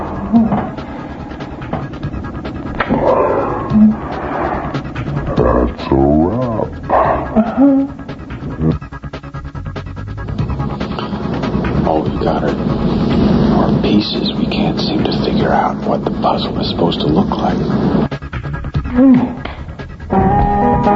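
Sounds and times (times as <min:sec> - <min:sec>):
steady rumble: 0:00.0 - 0:20.9
dog barking and whimpering: 0:06.9 - 0:08.0.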